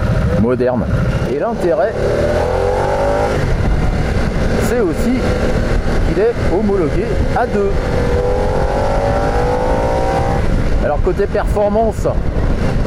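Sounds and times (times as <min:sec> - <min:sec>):
liquid-cooled 60-degree V-twin 975 engine revving: 0:00.0 - 0:11.1
speech: 0:00.4 - 0:02.6, 0:04.7 - 0:08.2, 0:10.8 - 0:12.5.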